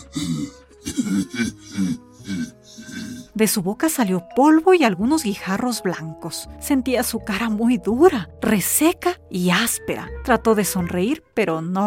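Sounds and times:
harsh forceful coughing: 0:00.0 - 0:03.3
person clearing throat: 0:00.0 - 0:03.3
speech: 0:00.2 - 0:01.8, 0:03.4 - 0:11.8.

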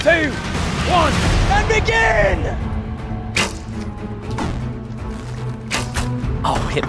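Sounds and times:
speech: 0:00.0 - 0:02.7, 0:06.4 - 0:06.8
arrows being shot at targets by archers: 0:03.3 - 0:06.2.

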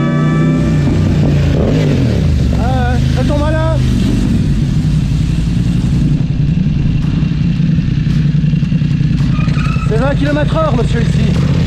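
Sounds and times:
loud vehicle engine rumbling: 0:00.0 - 0:11.6
speech: 0:10.2 - 0:11.2.

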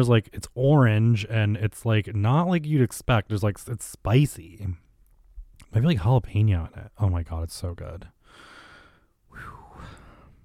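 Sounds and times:
speech: 0:00.0 - 0:04.8, 0:05.7 - 0:08.5
person breathing heavily: 0:08.2 - 0:10.4.

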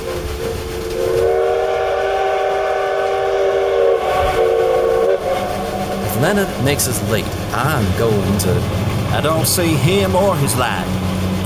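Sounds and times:
steam train whistle blowing as a signal: 0:00.0 - 0:07.0
low rumble of the steam locomotive: 0:00.0 - 0:11.4
speech: 0:06.2 - 0:11.4.

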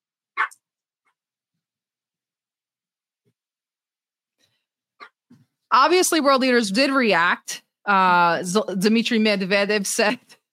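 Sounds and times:
puppy barking: 0:00.4 - 0:00.6
speech: 0:05.8 - 0:10.4.

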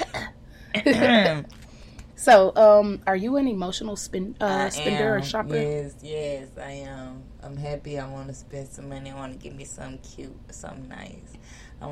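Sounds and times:
person clearing throat: 0:00.0 - 0:01.5
speech: 0:00.7 - 0:01.6, 0:02.2 - 0:11.9.

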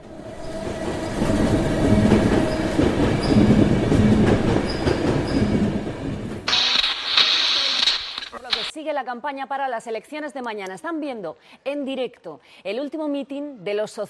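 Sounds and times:
train rumbling and clattering on rails: 0:00.0 - 0:06.5
high-pitched hiss or squeal of a train: 0:06.5 - 0:08.7
speech: 0:08.9 - 0:14.0.

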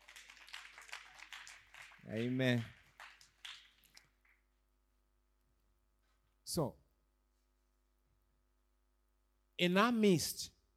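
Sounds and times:
worshipping audience clapping hands: 0:00.0 - 0:04.6
speech: 0:02.0 - 0:02.8, 0:06.5 - 0:06.8, 0:09.6 - 0:10.6.

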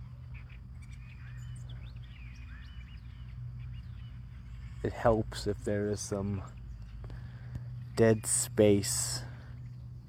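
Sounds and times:
several birds chirping and tweeting in a small garden with trees: 0:00.0 - 0:10.0
speech: 0:04.8 - 0:06.6, 0:08.0 - 0:09.3.

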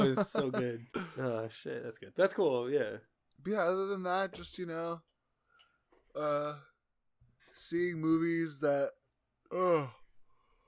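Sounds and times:
laughter: 0:00.0 - 0:01.2
speech: 0:00.1 - 0:05.1, 0:06.1 - 0:06.7, 0:07.4 - 0:10.0
person yawning: 0:09.5 - 0:10.1.

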